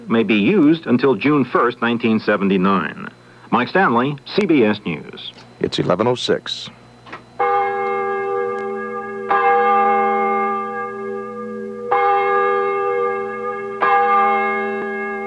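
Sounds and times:
speech: 0.1 - 6.8
church bell tolling: 7.4 - 15.2.

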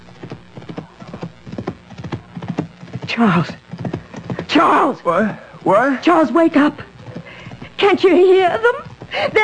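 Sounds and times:
horse hoofbeats clip-clopping: 0.0 - 4.7, 6.8 - 9.4
speech: 3.2 - 3.6, 4.6 - 6.9, 7.8 - 9.4.

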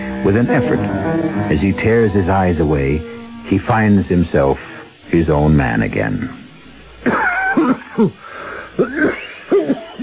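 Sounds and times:
speech: 0.2 - 6.4, 8.0 - 8.2
harsh rasping coughs: 7.0 - 8.2, 8.8 - 10.0.

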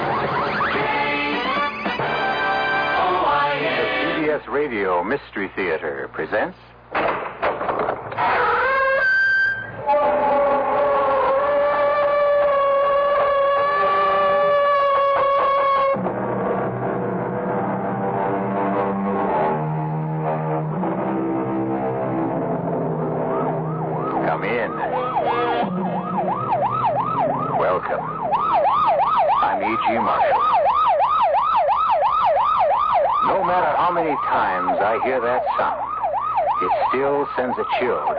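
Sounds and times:
police car or ambulance siren wailing: 0.0 - 4.2, 8.1 - 38.1
speech: 4.6 - 7.3
low traffic or engine rumble: 9.6 - 38.1.

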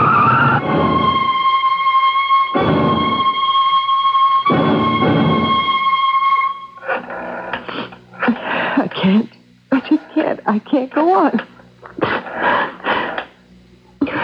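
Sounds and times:
truck skidding with high-pitched tire screech: 0.0 - 7.6
heavy rumbling of a skidding truck: 0.0 - 13.4.

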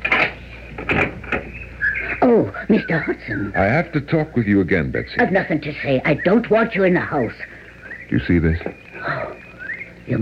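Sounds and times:
door hinges creaking as the door swings open: 0.0 - 1.6
speech: 2.2 - 7.5, 8.1 - 9.4, 10.1 - 10.2.

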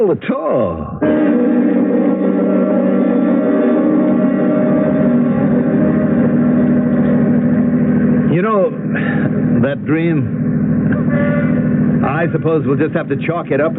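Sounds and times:
speech: 0.0 - 1.4, 8.4 - 13.7
car engine humming while driving: 0.0 - 13.7.

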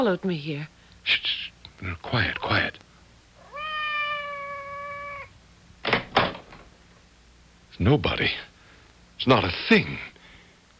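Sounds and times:
speech: 0.0 - 2.8, 7.8 - 8.5, 9.2 - 10.1
cat meowing outside the door: 3.4 - 5.3.

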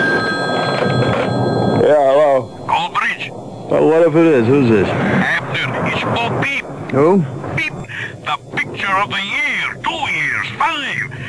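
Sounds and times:
telephone bell ringing with a bright metallic trill: 0.0 - 4.0
speech: 3.8 - 5.1, 6.1 - 7.4, 8.9 - 11.2.

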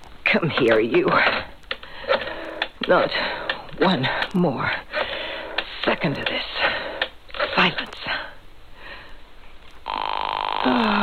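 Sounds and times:
speech: 0.3 - 1.5, 2.9 - 4.9, 5.8 - 6.6, 7.6 - 8.0
telephone ringing over the line through a handset: 9.9 - 10.7.

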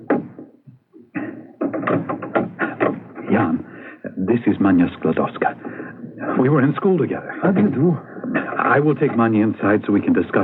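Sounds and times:
knocking on a door as a signal: 0.0 - 0.5, 1.6 - 3.3
speech: 4.3 - 5.7, 6.3 - 10.4.

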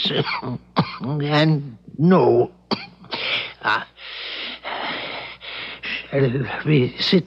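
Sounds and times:
man coughing in harsh bursts: 0.0 - 1.5, 2.7 - 3.9
speech: 0.0 - 2.9, 3.6 - 3.9, 6.1 - 7.2
man dragging in long rasping breaths: 3.1 - 6.2.

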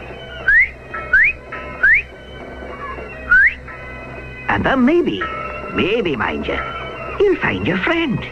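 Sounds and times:
person whistling short rising notes: 0.1 - 3.7
speech: 4.5 - 8.3.

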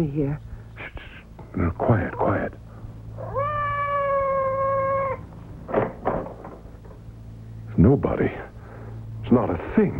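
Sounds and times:
speech: 0.0 - 0.5, 1.6 - 2.6, 7.8 - 8.5, 9.3 - 9.9
low steady hum: 0.0 - 9.9
cat meowing outside a door: 3.2 - 5.3.

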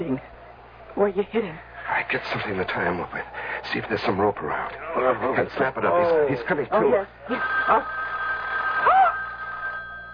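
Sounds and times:
speech: 1.0 - 8.0
telephone bell ringing: 7.3 - 10.1.

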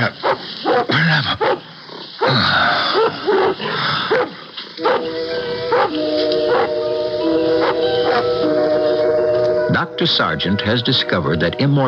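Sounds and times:
dog barking: 0.2 - 1.7, 3.0 - 6.9, 7.6 - 8.4
dog yelping and howling: 3.0 - 11.4
speech: 10.0 - 11.8.

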